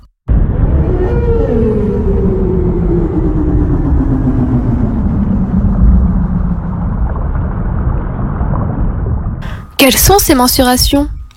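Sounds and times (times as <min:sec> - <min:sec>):
whale song with low gliding moan and harmonic tones: 0:00.3 - 0:08.3
steady deep underwater rumble: 0:00.3 - 0:09.7
speech: 0:09.8 - 0:11.2.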